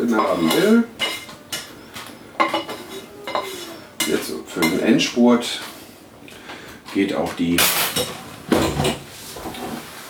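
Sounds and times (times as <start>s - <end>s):
utensil scraping and clanking against a deep pan: 0.0s - 5.1s
speech: 0.1s - 1.0s, 4.5s - 5.7s, 6.9s - 8.2s.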